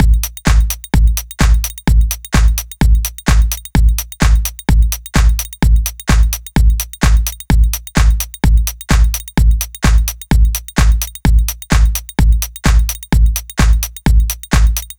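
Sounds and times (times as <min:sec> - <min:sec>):
techno drum kit beat: 0:00.0 - 0:14.9.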